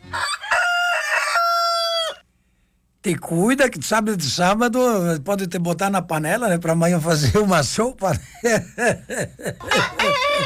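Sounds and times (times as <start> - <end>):
grey rooster crowing in a yard among hens: 0.0 - 2.2
speech: 3.0 - 10.4
laughter: 8.1 - 10.4.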